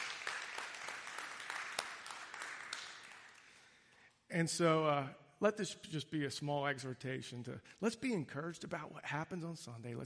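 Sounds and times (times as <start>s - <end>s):
audience applauding: 0.0s - 3.6s
speech: 4.3s - 10.0s.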